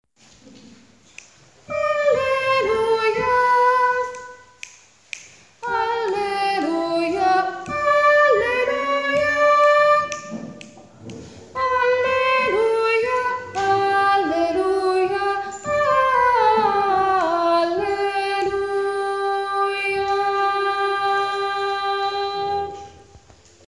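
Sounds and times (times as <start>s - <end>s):
sopranos singing an alleluia: 1.7s - 4.7s, 5.6s - 23.1s.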